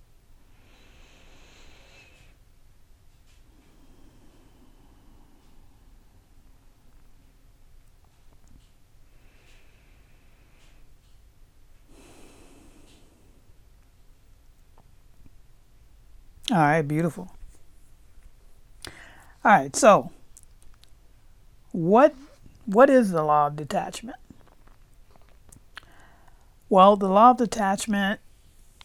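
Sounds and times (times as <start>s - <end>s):
steady hiss: 0.0s - 28.8s
slow deep breathing during a guided meditation: 0.4s - 2.5s, 3.3s - 6.6s, 9.0s - 11.2s, 11.8s - 13.6s, 18.8s - 19.4s, 25.8s - 26.6s
speech: 16.5s - 17.4s, 19.4s - 20.2s, 21.8s - 24.2s, 26.7s - 28.2s.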